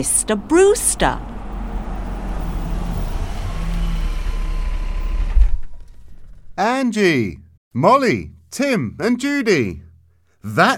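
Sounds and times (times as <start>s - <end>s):
speech: 0.0s - 1.3s, 6.6s - 9.8s, 10.4s - 10.7s
car engine rumbling while driving round a corner: 0.0s - 6.7s.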